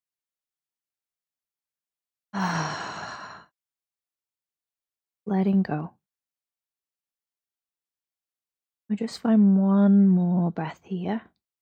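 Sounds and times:
speech: 0:02.3 - 0:02.9, 0:05.3 - 0:06.0, 0:08.9 - 0:11.3
person sighing to ease tension: 0:02.4 - 0:03.4.

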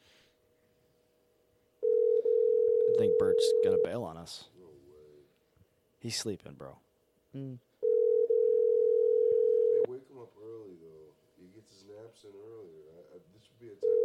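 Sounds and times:
ringback tone of an outgoing phone call over a speakerphone: 0:01.8 - 0:04.0, 0:07.8 - 0:09.9, 0:13.8 - 0:14.0
speech: 0:03.2 - 0:04.6, 0:06.0 - 0:07.7, 0:11.6 - 0:14.0.

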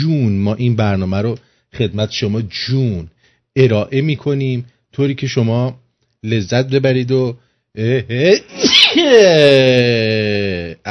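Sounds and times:
speech: 0:00.0 - 0:10.8
loud voiced human sneeze: 0:08.4 - 0:10.0.

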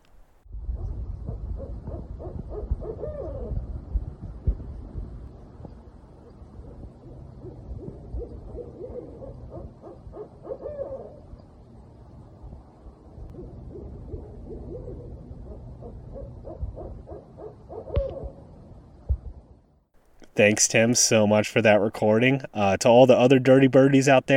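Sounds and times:
steady low outdoor rumble: 0:00.0 - 0:24.3
two barred owls duetting with hoots and caterwauls in a backyard: 0:00.8 - 0:03.7, 0:06.2 - 0:11.4, 0:13.3 - 0:18.5
speech: 0:20.4 - 0:24.3.

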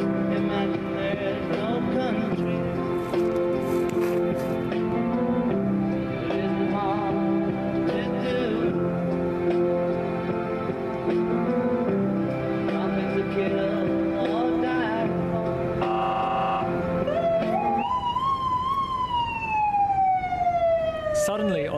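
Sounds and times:
gentle piano-led music: 0:00.0 - 0:21.2
Border Patrol vehicle siren wailing: 0:15.7 - 0:21.7.

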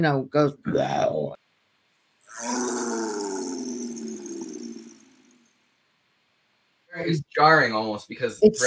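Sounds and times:
speech: 0:00.0 - 0:01.4, 0:02.3 - 0:03.2, 0:07.0 - 0:08.6
tiger roaring: 0:02.3 - 0:05.4.

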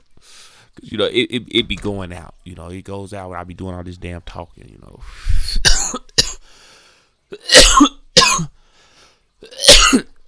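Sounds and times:
speech: 0:00.8 - 0:05.8
person coughing: 0:05.5 - 0:06.5, 0:07.3 - 0:08.6, 0:09.4 - 0:10.2.

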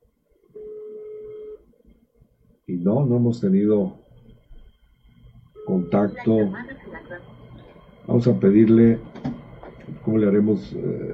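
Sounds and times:
faint noise: 0:00.0 - 0:11.1
telephone ring tone: 0:00.6 - 0:01.6, 0:05.6 - 0:06.5
speech: 0:02.7 - 0:04.0, 0:05.9 - 0:07.3, 0:08.1 - 0:09.1, 0:10.1 - 0:11.1.

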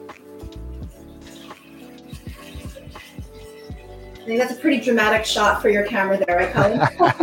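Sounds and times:
vegetable broth pouring into a cooking pot: 0:00.8 - 0:05.5
speech: 0:04.3 - 0:07.2
laughter: 0:06.3 - 0:07.2.

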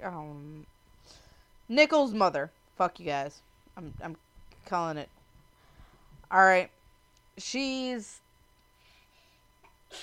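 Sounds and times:
quick intake of breath: 0:01.0 - 0:01.6, 0:05.6 - 0:06.2
speech: 0:01.7 - 0:05.2, 0:06.3 - 0:06.8, 0:07.4 - 0:08.2.

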